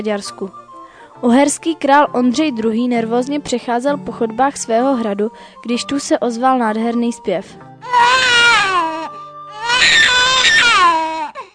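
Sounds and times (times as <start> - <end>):
speech: 0.0 - 0.6, 1.2 - 8.0
newborn baby wailing: 7.8 - 11.5.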